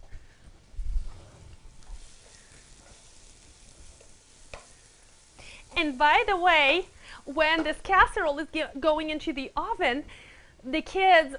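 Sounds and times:
onion sautéing in olive oil in a pan: 0:00.0 - 0:11.3
stirring in a pan: 0:01.0 - 0:09.0
speech: 0:05.9 - 0:11.3.

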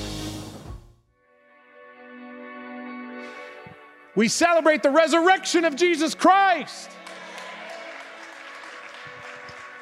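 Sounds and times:
speech: 0:04.2 - 0:07.0
crowd clapping: 0:06.0 - 0:09.8.

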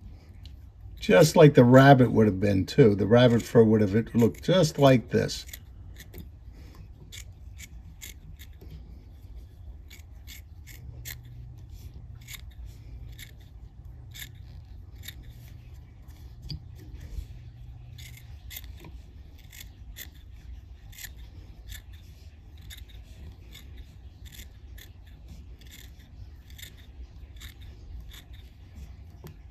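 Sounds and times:
low steady hum: 0:00.0 - 0:29.5
speech: 0:01.0 - 0:05.6
curved scissors trimming fly-tying material: 0:07.0 - 0:08.7, 0:09.8 - 0:11.4, 0:12.1 - 0:29.5.

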